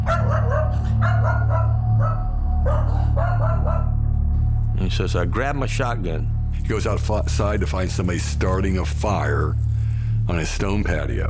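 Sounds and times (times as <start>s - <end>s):
dog barking: 0.0s - 4.0s
constant low hum: 0.0s - 11.2s
speech: 4.9s - 11.2s.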